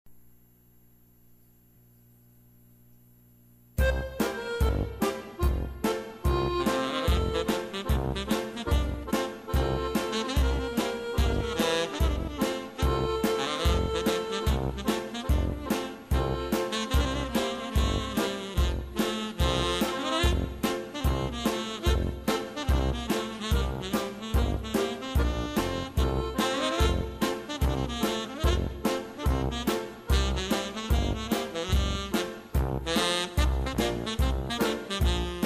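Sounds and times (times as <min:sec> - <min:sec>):
German band playing: 0:03.8 - 0:35.4.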